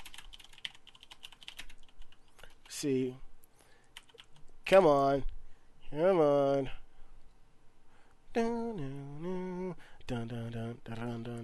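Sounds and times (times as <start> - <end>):
typing on a computer keyboard: 0.0 - 2.2, 3.9 - 4.4
speech: 2.8 - 3.3, 4.7 - 5.3, 5.9 - 6.8, 8.4 - 11.4.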